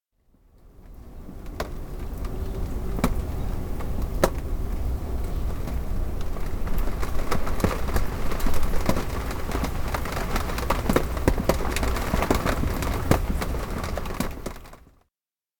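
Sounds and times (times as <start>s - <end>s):
rain: 0.2s - 15.0s.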